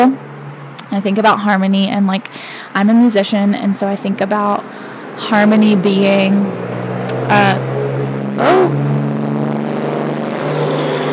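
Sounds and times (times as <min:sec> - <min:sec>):
speech: 0:00.0 - 0:00.2, 0:00.9 - 0:07.7, 0:08.4 - 0:08.8
loud truck passing by: 0:04.1 - 0:11.1.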